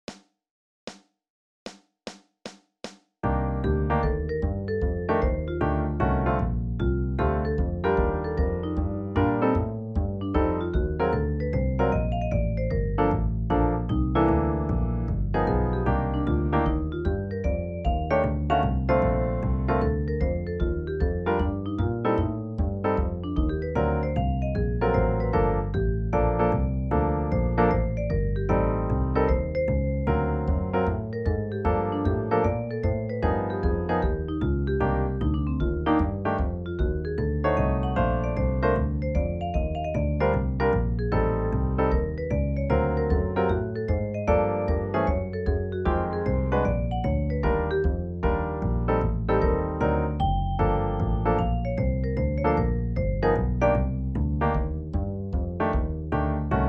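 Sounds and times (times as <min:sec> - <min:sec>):
etude without drums: 0:03.2 - 0:56.6.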